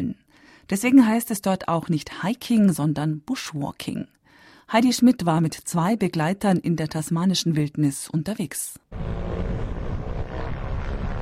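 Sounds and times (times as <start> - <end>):
speech: 0.7 - 9.2
very small airplane engine roar flying along Tasmania's southwest coast: 9.0 - 11.1.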